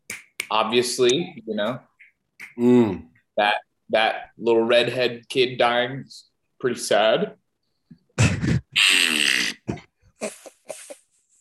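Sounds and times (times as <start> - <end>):
speech: 0.5 - 1.9, 2.6 - 7.4
vocal imitation of a fart: 8.2 - 9.9.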